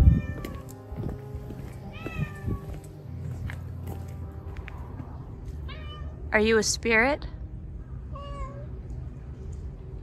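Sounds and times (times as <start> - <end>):
cat meowing: 0.0 - 0.7, 1.9 - 2.8, 5.7 - 6.2, 8.1 - 8.8
low outdoor rumble: 1.9 - 10.0
speech: 6.3 - 7.3.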